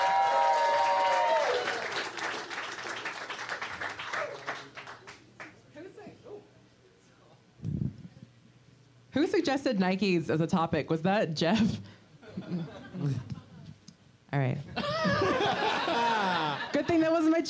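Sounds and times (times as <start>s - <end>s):
person whooping: 0.0s - 2.0s
crowd applauding: 0.0s - 5.6s
speech: 9.2s - 11.9s, 12.5s - 13.3s
laughter: 12.2s - 13.7s, 14.8s - 17.4s.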